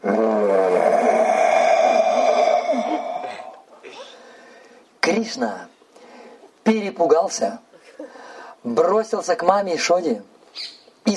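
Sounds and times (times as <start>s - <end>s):
human voice imitating a beast's roar: 0.0s - 3.7s
speech: 5.2s - 5.7s, 6.7s - 7.6s, 8.6s - 11.1s.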